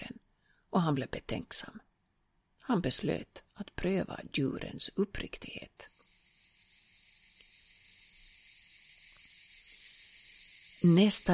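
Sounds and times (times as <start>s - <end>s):
speech: 0.8s - 1.9s, 2.7s - 6.0s, 10.8s - 11.3s
cicadas shrilling in hot forest: 5.8s - 11.3s
faint scattered clicks: 6.9s - 7.6s.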